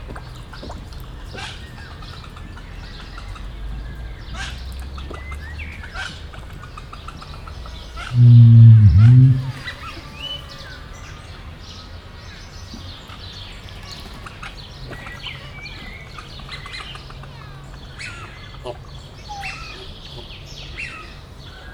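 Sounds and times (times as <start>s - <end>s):
rhea calling in a zoo: 8.1s - 9.8s.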